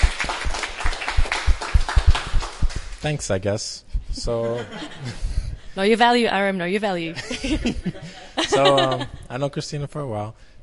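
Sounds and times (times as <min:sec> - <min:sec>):
audience applause: 0:00.0 - 0:03.0
speech: 0:03.0 - 0:10.6
laughter: 0:04.2 - 0:05.4, 0:07.2 - 0:09.3.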